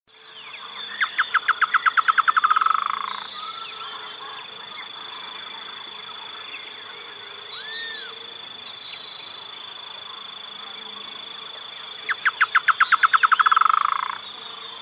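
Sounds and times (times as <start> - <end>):
continuous insect drone: 0.1 - 14.8
Chotoy spinetail Schoeniophylax phryganophilus phryganophilus calling: 1.0 - 4.4, 12.1 - 14.2.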